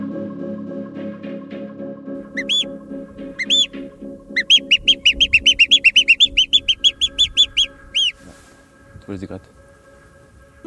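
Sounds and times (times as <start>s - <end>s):
person whistling a bird call: 2.4s - 2.7s, 3.4s - 3.7s, 4.4s - 8.2s.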